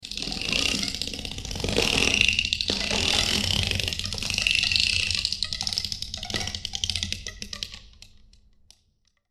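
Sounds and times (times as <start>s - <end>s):
long tape glue dispenser application: 0.1s - 5.5s.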